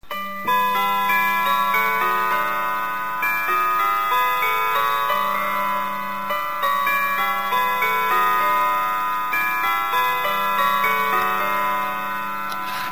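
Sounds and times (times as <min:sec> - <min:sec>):
grandfather clock chiming on bells: 0:00.0 - 0:12.9.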